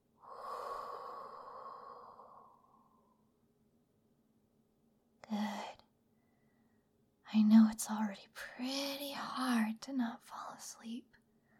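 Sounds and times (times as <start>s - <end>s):
deep breath in and out during a guided relaxation exercise: 0.2s - 3.3s
speech: 7.3s - 11.2s.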